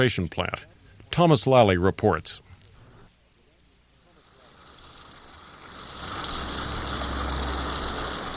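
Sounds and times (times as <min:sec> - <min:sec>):
speech: 0:00.0 - 0:02.4
mountain creek water flowing: 0:04.0 - 0:08.3.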